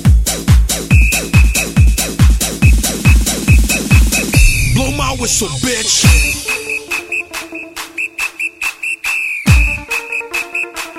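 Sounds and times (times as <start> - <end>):
whistle blown in short trilling blasts: 0.9 - 4.8, 6.1 - 10.9
speech: 5.2 - 6.6.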